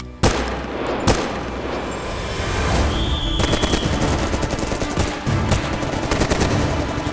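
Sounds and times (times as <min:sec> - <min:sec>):
gunfire: 0:00.2 - 0:07.1
rumbling noisy background: 0:00.2 - 0:07.1
high whine: 0:00.7 - 0:04.6.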